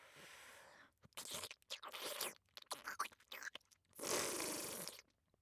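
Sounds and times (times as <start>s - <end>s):
food being bitten and chewed with crisp crunching: 1.2s - 5.0s.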